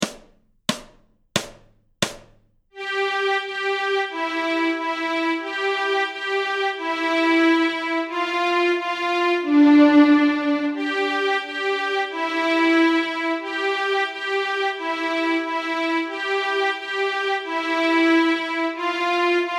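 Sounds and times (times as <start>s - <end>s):
violin string part: 2.8s - 19.5s.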